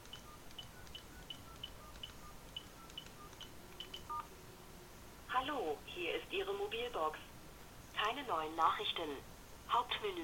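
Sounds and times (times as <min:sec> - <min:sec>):
telephone keypad tones entering a PIN for mobile phone voicemail: 0:00.0 - 0:04.3
speech: 0:05.4 - 0:07.3, 0:08.0 - 0:10.2.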